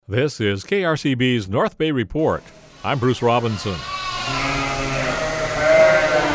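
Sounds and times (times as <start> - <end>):
speech: 0.1 - 4.6
sheep bleating in a large open-ended barn at shearing time: 2.8 - 6.3.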